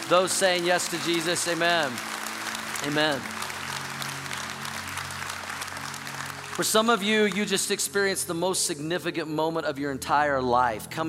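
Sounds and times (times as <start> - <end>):
large church audience applauding in celebration after a prayer: 0.0 - 8.2
speech: 0.1 - 2.2, 2.8 - 3.4, 6.6 - 11.0.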